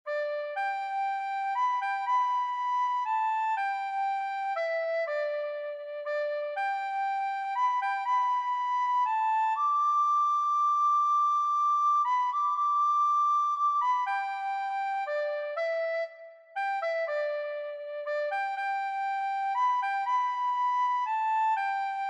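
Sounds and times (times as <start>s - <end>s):
recorder playing a hymn: 0.1s - 22.0s.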